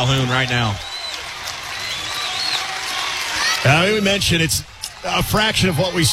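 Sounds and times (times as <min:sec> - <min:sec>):
speech: 0:00.0 - 0:00.9, 0:03.6 - 0:06.1
ballpark crowd cheering from the stands: 0:00.0 - 0:06.1
thin whistle: 0:00.8 - 0:03.2.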